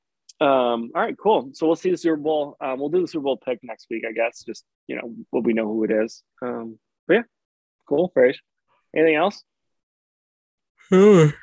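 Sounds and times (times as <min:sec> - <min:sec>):
speech: 0:00.4 - 0:09.5, 0:10.9 - 0:11.4
person yawning: 0:10.9 - 0:11.4.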